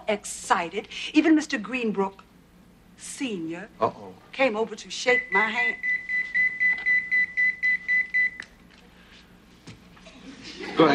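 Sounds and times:
speech: 0.1 - 2.3, 3.0 - 5.9, 10.8 - 10.9
pager beeping in short high electronic tones: 5.1 - 8.4
laughter: 10.0 - 10.9.

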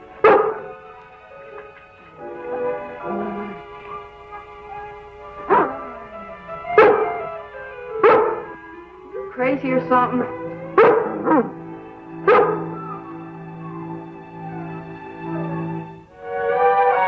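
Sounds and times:
faint noise: 0.0 - 17.0
dog whining softly: 0.1 - 9.4, 10.2 - 15.5
female dog barking in short sharp bursts: 0.2 - 0.8, 3.1 - 6.1, 6.8 - 7.3, 8.0 - 8.6, 10.7 - 11.6, 12.2 - 13.2
speech: 9.5 - 10.4.

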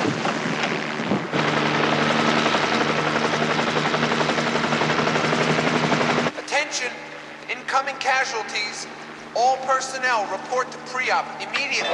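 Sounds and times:
engine and wind noise: 0.0 - 6.4
helicopter landing on a pad with rotor throbbing: 0.0 - 11.9
speech: 8.0 - 11.9.

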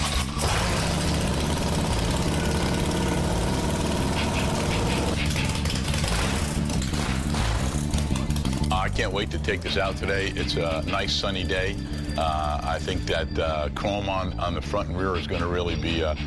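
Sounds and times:
stretched-out chrome motorcycle engine starting and idling: 0.0 - 10.8
speech: 9.0 - 16.2.

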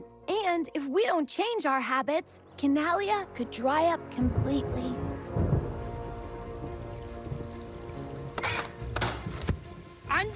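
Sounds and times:
speech: 0.5 - 5.0, 10.2 - 10.3
thunder rumbling: 3.8 - 9.0
steady rain pattering on a surface: 4.1 - 10.3.

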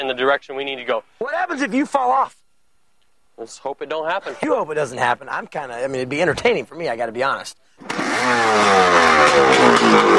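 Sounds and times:
speech: 0.0 - 2.4, 3.4 - 10.1
motorcycle engine revving while driving a custom-built boat propeller: 7.8 - 10.1.

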